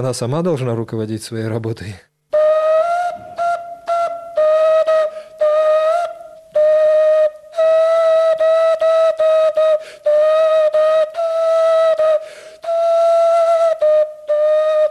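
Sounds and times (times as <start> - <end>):
speech: 0.0 - 2.1
coconut shell whistles blowing a single-pitched tone: 2.4 - 14.8.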